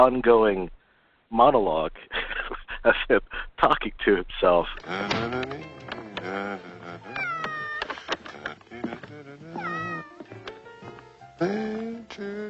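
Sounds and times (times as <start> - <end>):
speech: 0.0 - 2.2, 2.8 - 7.2, 11.4 - 12.4
cat meowing: 7.0 - 8.0, 9.5 - 10.2.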